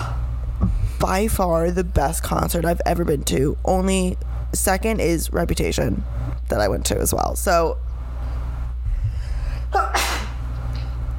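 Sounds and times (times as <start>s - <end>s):
low steady hum: 0.0s - 11.1s
speech: 1.0s - 7.9s
person sneezing: 9.7s - 10.4s.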